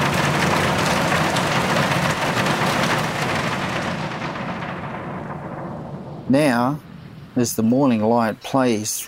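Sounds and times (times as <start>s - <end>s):
heavy rain drumming on a taut plastic roof: 0.0s - 6.6s
deep rumbling thunder of a thunderstorm: 0.0s - 8.4s
speech: 6.3s - 9.0s.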